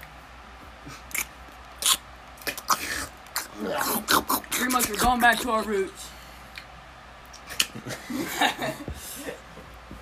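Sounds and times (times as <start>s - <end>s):
person chewing and crunching food: 0.8s - 5.4s, 6.5s - 7.8s
speech: 0.9s - 1.1s, 3.6s - 6.1s, 8.2s - 8.9s
laughter: 7.8s - 9.4s.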